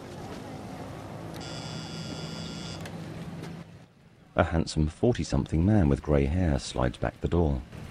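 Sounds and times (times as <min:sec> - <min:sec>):
electric doorbell buzzer pressed at a small house's screen door: 0:01.4 - 0:02.8
speech: 0:04.4 - 0:07.8.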